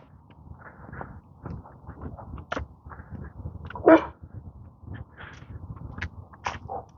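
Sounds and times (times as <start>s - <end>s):
low rumble: 0.0s - 6.9s
neighborhood dogs barking: 6.6s - 6.9s.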